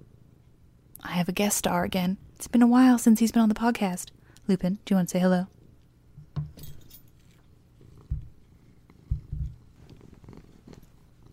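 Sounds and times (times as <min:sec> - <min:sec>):
speech: 0:01.1 - 0:05.6
light jingle: 0:06.5 - 0:07.4
cat purring: 0:07.2 - 0:11.3
soft bumps: 0:08.1 - 0:08.4, 0:09.1 - 0:11.0.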